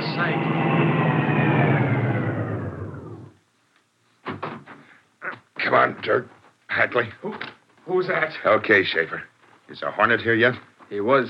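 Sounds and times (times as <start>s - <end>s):
car engine rumbling: 0.0s - 3.3s
speech: 5.7s - 11.2s.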